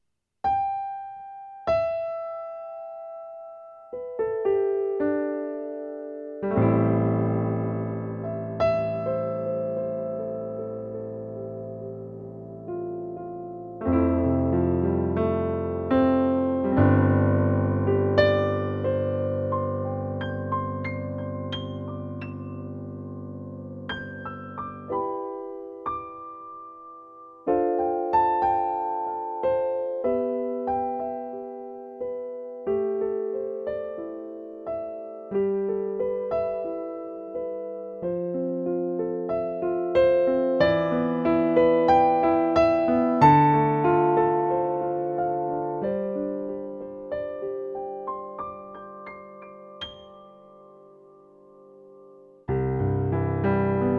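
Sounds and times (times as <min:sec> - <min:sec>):
digital concert piano playing: 0:00.5 - 0:53.9.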